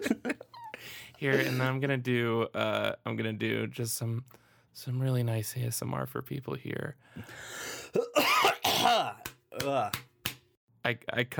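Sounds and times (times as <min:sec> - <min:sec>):
speech: 0:01.2 - 0:10.1, 0:10.8 - 0:11.3
throaty coughs: 0:01.3 - 0:01.7, 0:07.9 - 0:09.9.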